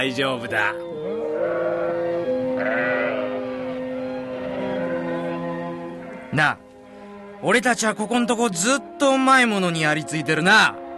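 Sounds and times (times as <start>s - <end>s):
speech: 0.0s - 1.2s, 6.3s - 6.6s, 7.4s - 10.8s
sheep bleating: 0.8s - 6.4s.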